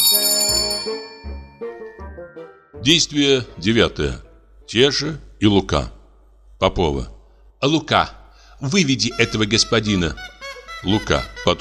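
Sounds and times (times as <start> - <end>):
bell ringing in a dramatized stage comedy: 0.0 - 2.6
speech: 2.8 - 6.0, 6.6 - 11.5.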